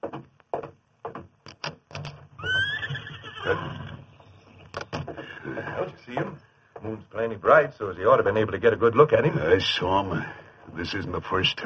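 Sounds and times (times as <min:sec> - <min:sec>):
horse hooves knocking on a hard surface: 0:00.0 - 0:02.4, 0:03.6 - 0:08.7
horse whinnying: 0:02.4 - 0:04.6
speech: 0:03.4 - 0:03.8, 0:05.5 - 0:11.6.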